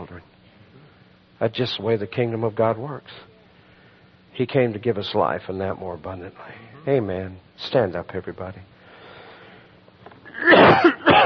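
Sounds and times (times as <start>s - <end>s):
speech: 1.4s - 3.3s, 4.4s - 8.7s
person preaching coughing at a church service: 10.3s - 11.2s.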